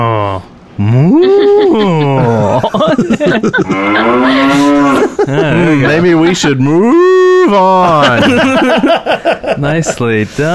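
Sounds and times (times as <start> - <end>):
laughter: 0.9 - 10.5
speech: 2.8 - 4.6, 5.3 - 10.5
cow mooing: 3.6 - 5.2.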